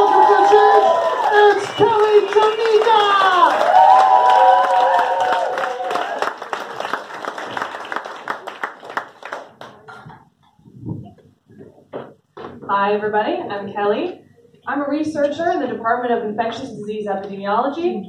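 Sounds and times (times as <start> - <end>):
crowd clapping and cheering with whoops and shouts: 0.0 - 10.3
speech: 12.9 - 18.0.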